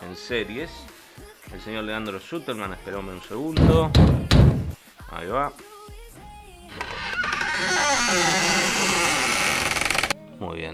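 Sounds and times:
speech: 0.1 - 4.5, 5.1 - 5.7, 7.6 - 8.8, 10.4 - 10.7
door opening with a harsh grinding creak: 3.6 - 4.8, 6.7 - 10.2.

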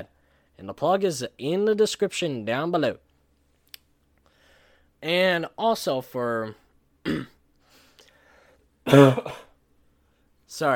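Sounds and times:
speech: 0.0 - 3.1, 5.0 - 7.3, 8.8 - 9.5, 10.5 - 10.7
harsh coughs: 7.0 - 7.4, 8.8 - 9.6.

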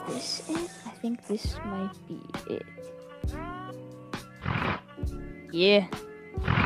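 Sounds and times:
speech: 0.1 - 3.5, 5.1 - 6.6
rhino grunt sound effect: 4.4 - 4.9, 6.3 - 6.6
rough breathy snorting burst of a rhino: 4.4 - 4.9, 6.4 - 6.6.

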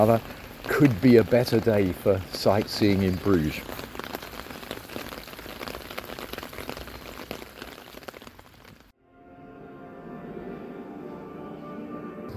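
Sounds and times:
speech: 0.0 - 3.9
rain on hard surfaces: 0.0 - 9.0.

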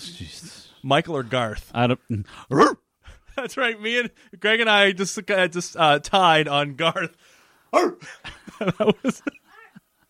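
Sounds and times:
speech: 0.8 - 2.8, 3.4 - 9.4
dog barking in sharp high-pitched yaps: 2.5 - 2.8, 7.8 - 8.0
laughter: 8.0 - 10.0.

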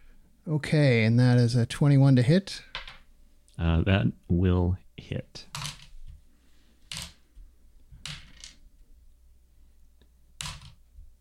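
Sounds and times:
speech: 0.5 - 2.7, 3.6 - 5.8
several dice clattering across a hard tabletop: 2.7 - 3.0, 5.5 - 6.0, 6.9 - 7.2, 8.0 - 8.6, 10.4 - 10.8.

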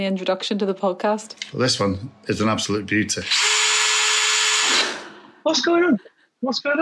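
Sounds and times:
speech: 0.0 - 3.5, 5.4 - 6.8
power drill whirring: 3.2 - 5.2.

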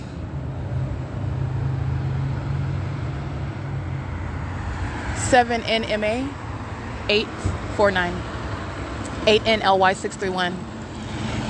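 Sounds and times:
large truck engine rumbling: 0.0 - 11.4
road noise: 0.0 - 11.4
speech: 5.3 - 6.4, 7.1 - 8.3, 9.2 - 10.7.

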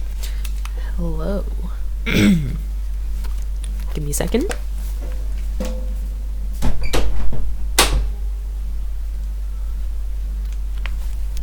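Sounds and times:
low steady hum: 0.0 - 11.4
speech: 1.0 - 2.6, 4.0 - 4.6
door handled and pushed shut with a sharp closing thud: 6.6 - 8.2.

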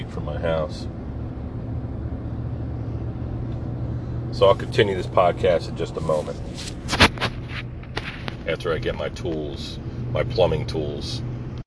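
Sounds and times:
droning low vehicle engine rumble: 0.0 - 11.6
speech: 0.2 - 1.0, 4.3 - 7.3, 8.5 - 11.3.

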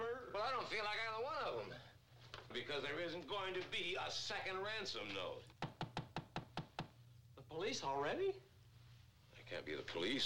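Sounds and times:
speech: 0.4 - 5.6, 7.5 - 8.4, 9.5 - 10.2
knocking on a door: 5.6 - 7.0.

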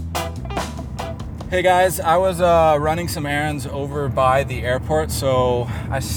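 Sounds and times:
car dashboard chimes: 0.2 - 6.1
car door shutting: 0.2 - 6.1
speech: 1.5 - 6.1.

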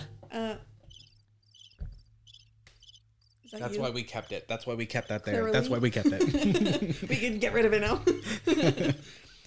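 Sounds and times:
cricket chirping: 0.8 - 4.4
speech: 3.5 - 9.3
laughter: 5.6 - 9.3.

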